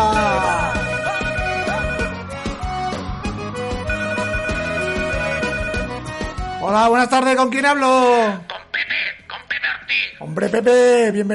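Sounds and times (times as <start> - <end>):
melodic electronic telephone ringtone for an incoming call: 0.0 - 6.6
speech: 6.7 - 8.5, 10.2 - 11.3.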